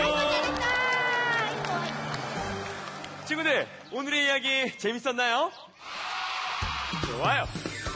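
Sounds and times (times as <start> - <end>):
audience clapping: 0.0 - 4.1
speech: 3.3 - 5.6, 6.9 - 7.6.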